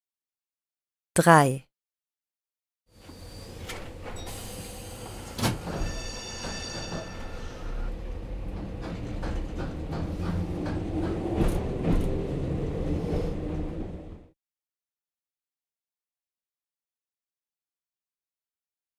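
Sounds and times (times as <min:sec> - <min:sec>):
speech: 0:01.2 - 0:01.7
high metallic tram wheel squeal: 0:03.0 - 0:08.2
clanks and rattles over the tram track: 0:03.0 - 0:14.2
tram rolling past with a steady low rumble: 0:03.0 - 0:14.3.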